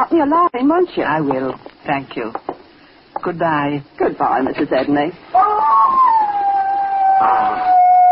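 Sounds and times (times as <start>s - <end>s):
speech: 0.0s - 2.5s, 3.2s - 6.1s, 7.2s - 7.7s
dog howling: 5.3s - 8.1s.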